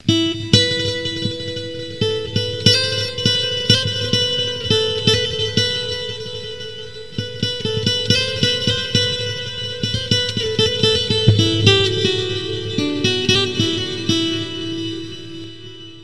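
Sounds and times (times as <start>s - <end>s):
guitar: 0.0s - 16.0s.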